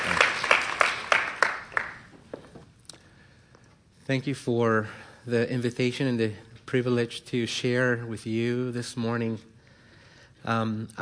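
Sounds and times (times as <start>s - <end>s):
audience applause in a room: 0.0s - 2.1s
speech: 4.1s - 9.5s, 10.4s - 11.0s.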